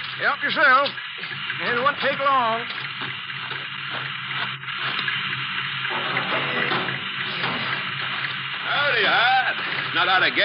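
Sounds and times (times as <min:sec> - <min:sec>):
water running from a tap: 0:00.0 - 0:10.4
speech: 0:00.2 - 0:06.8, 0:10.0 - 0:10.4.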